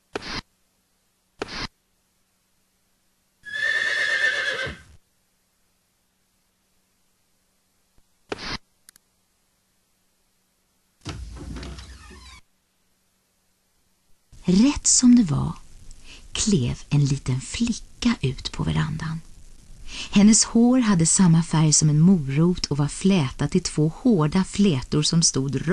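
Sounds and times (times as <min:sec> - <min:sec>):
horse neighing on the veranda of an old house: 0:03.4 - 0:04.9
speech: 0:14.5 - 0:15.6, 0:16.4 - 0:19.3, 0:19.9 - 0:25.7.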